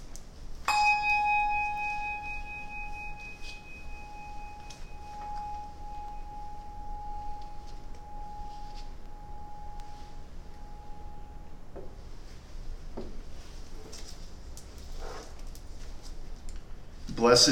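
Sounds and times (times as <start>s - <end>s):
church bell ringing: 0.7s - 11.7s
speech: 17.2s - 17.5s.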